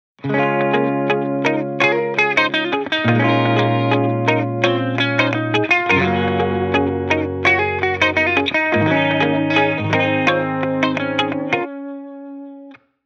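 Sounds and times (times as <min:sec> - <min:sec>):
stacked pop guitar loop: 0:00.2 - 0:12.8.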